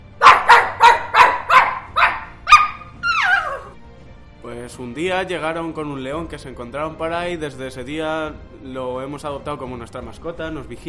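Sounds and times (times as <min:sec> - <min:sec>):
dog barking: 0:00.2 - 0:03.7
speech: 0:04.7 - 0:10.8.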